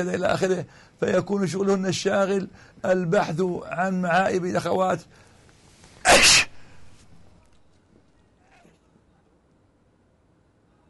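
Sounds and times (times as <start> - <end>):
speech: 0.0 - 5.2, 6.0 - 6.5
faint breathy trail: 0.7 - 1.0, 2.5 - 2.8, 5.0 - 7.0
person sneezing: 6.0 - 6.8.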